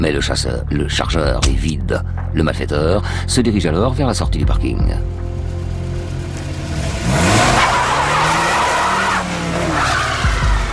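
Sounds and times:
speech: 0.0 - 5.3
car engine roaring and straining: 5.1 - 10.7
car tires screeching as it skids to a stop: 5.7 - 10.7.

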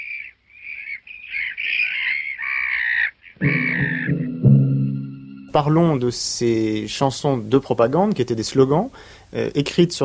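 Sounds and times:
seagulls calling: 0.2 - 4.3
speech: 3.4 - 4.0, 5.6 - 10.0.

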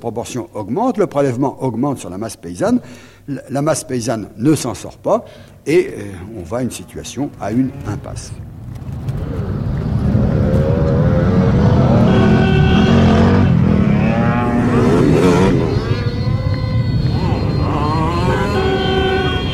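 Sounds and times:
speech: 0.0 - 8.5
loud modified car engine revving: 8.7 - 19.5.

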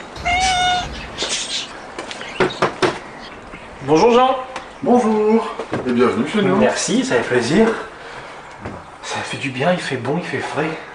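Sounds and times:
soft clattering knocks: 0.0 - 3.7
cat meowing at the entrance to a greenhouse: 0.2 - 1.1
speech: 3.9 - 7.9, 9.4 - 10.9.

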